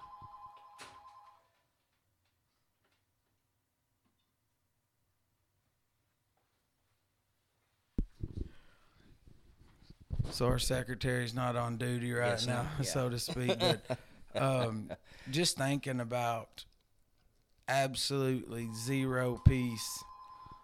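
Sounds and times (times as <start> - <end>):
telephone ringing with bright electronic tone: 0.0 - 1.4, 18.7 - 20.6
speech: 10.3 - 16.7, 17.7 - 20.1
laughter: 12.4 - 15.1.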